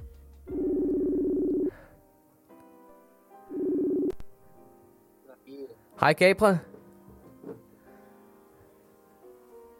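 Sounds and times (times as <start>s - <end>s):
electronic phone ringback tone: 0.5s - 1.8s, 3.5s - 4.2s
speech: 6.0s - 6.7s.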